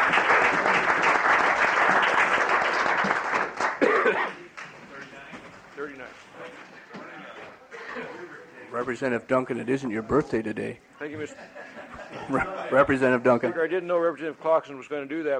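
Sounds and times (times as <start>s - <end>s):
room full of people applauding in a legislative chamber: 0.0s - 5.3s
laughter: 7.0s - 8.6s, 11.0s - 13.2s
speech: 8.8s - 11.6s, 12.3s - 15.3s.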